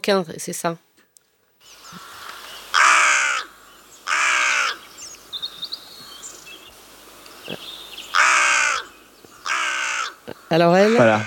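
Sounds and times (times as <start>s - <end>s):
speech: 0.0s - 0.9s, 10.5s - 11.2s
faint bird chirps: 1.6s - 11.2s
carrion crow cawing with harmonic notes: 2.0s - 4.8s, 8.1s - 11.2s.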